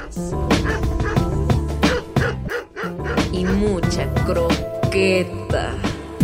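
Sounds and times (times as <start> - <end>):
dog barking: 0.0 - 3.6
loud music: 0.0 - 6.2
speech: 0.2 - 0.7, 3.4 - 5.9.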